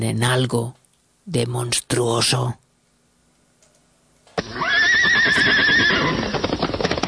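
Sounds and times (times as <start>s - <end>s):
speech: 0.0s - 2.6s, 5.2s - 6.5s
horse whinnying: 4.4s - 6.9s.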